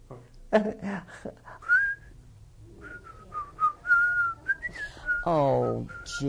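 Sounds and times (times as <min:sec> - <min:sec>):
speech: 0:00.5 - 0:01.6, 0:05.2 - 0:06.2
person whistling a short wavering tune: 0:01.6 - 0:02.1, 0:02.8 - 0:06.2.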